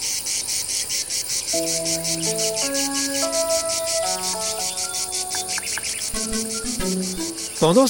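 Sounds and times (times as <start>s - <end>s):
cicada chirping in rapid rhythmic pulses: 0.0s - 7.8s
speech: 1.5s - 4.6s, 7.6s - 7.8s
simple melody of sustained musical tones: 1.6s - 7.8s.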